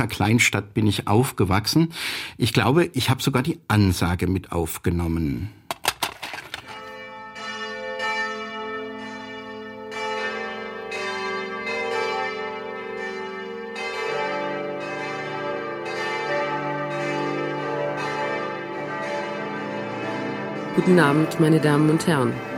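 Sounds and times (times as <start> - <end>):
speech: 0.0 - 5.6, 20.8 - 22.5
several large church bells pealing together: 6.6 - 22.5.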